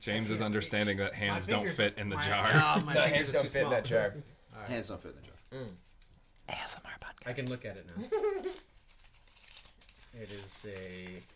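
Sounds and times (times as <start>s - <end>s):
speech: 0.0s - 5.9s, 6.5s - 8.6s, 10.1s - 11.3s
piece of paper crinkling as it is unfolded: 4.7s - 6.7s, 7.3s - 11.3s.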